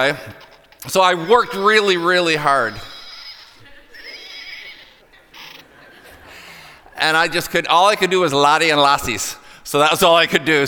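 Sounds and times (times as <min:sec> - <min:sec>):
speech: 0:00.0 - 0:02.9, 0:07.0 - 0:10.6
horse neighing: 0:00.0 - 0:05.8
laughter: 0:00.0 - 0:09.4.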